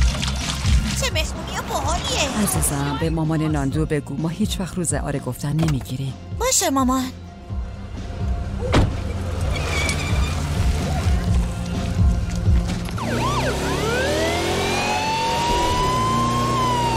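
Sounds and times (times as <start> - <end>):
road and engine rumble of a vehicle driving fast through a city: 0.2 - 3.0, 8.6 - 16.9
speech: 1.1 - 7.6
emergency vehicle siren wailing: 13.0 - 16.9.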